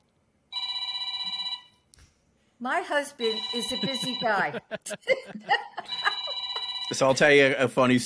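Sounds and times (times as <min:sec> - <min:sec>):
phone ringing with trilling electronic tone: 0:00.5 - 0:01.8, 0:03.2 - 0:04.6, 0:05.8 - 0:07.2
speech: 0:02.6 - 0:06.0, 0:06.9 - 0:08.0
laughter: 0:03.6 - 0:07.3.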